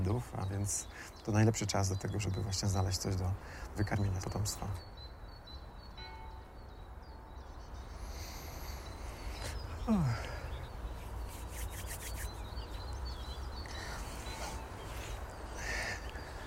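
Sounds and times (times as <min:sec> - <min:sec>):
hawfinch sharp ticking calls overhead: 0:00.0 - 0:16.4
steady rustling outdoor background: 0:00.0 - 0:16.4
speech: 0:00.1 - 0:05.0, 0:09.9 - 0:10.3.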